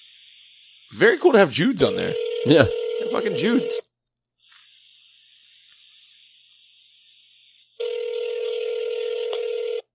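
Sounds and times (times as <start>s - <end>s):
speech: 0.9s - 3.9s
electronic telephone ringing: 1.8s - 3.8s, 7.8s - 9.9s.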